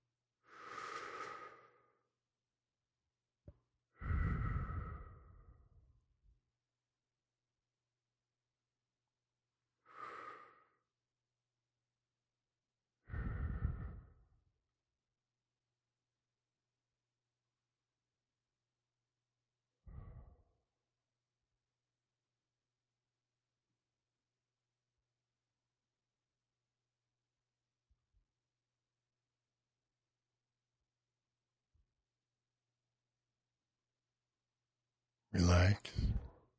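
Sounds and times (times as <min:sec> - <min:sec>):
slow deep breaths during a guided breathing exercise: 0:00.4 - 0:02.1, 0:03.9 - 0:05.8, 0:09.8 - 0:10.9, 0:13.0 - 0:14.4, 0:19.8 - 0:20.6, 0:35.6 - 0:36.4
speech: 0:35.3 - 0:36.3.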